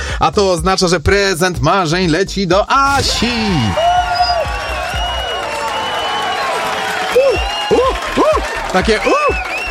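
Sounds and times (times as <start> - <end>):
speech: 0.2 - 3.9, 8.7 - 9.4
excited voices and cheering: 2.9 - 9.6
crowd applauding: 3.2 - 9.6.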